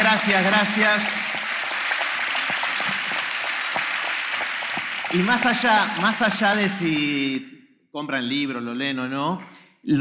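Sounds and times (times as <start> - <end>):
crowd applauding: 0.0 - 7.3
sharp individual claps: 0.0 - 7.3
speech: 0.2 - 1.2, 5.1 - 10.0.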